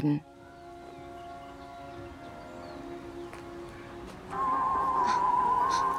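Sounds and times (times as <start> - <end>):
speech: 0.0 - 0.3
mobile phone ringtone tone: 4.3 - 5.9.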